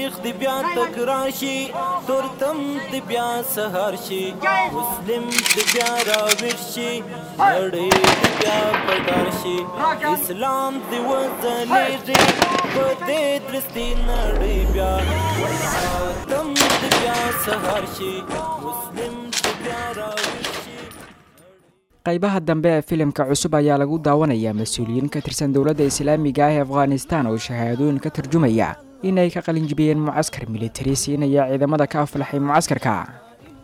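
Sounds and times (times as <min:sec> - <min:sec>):
speech: 0:00.0 - 0:16.4, 0:17.4 - 0:20.4, 0:22.0 - 0:33.2
gunfire from AK-47 rifles, BKM machine guns and RPGs during military training: 0:05.3 - 0:06.6, 0:07.9 - 0:08.7, 0:12.2 - 0:13.0
musical backing: 0:13.8 - 0:18.5.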